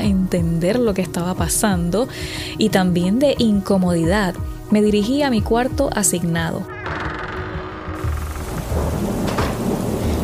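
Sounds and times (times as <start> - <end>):
speech: 0.0 - 7.0
deep rumble of thunder: 8.0 - 10.2
heavy rain pouring: 8.0 - 10.2.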